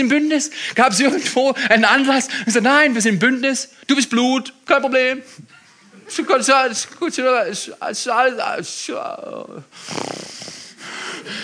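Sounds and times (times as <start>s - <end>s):
speech: 0.0s - 10.2s
heavy wheezing breathing: 9.7s - 11.4s.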